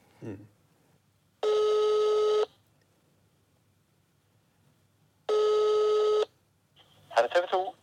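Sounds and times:
speech: 0.2 - 0.6
telephone call electronic ring tones: 1.4 - 2.5, 5.3 - 6.3.

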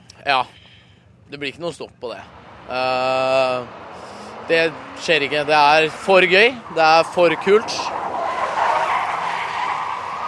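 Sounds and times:
speech: 0.2 - 0.6, 1.3 - 8.0
car engine: 2.0 - 10.2
tires squealing as a car drifts: 2.2 - 10.2.

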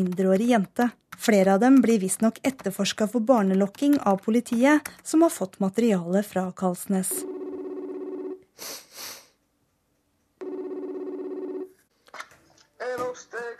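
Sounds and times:
speech: 0.0 - 7.4, 8.6 - 9.1
phone line electronic ringing tone on an outgoing call to England: 7.2 - 8.4, 10.4 - 11.8.

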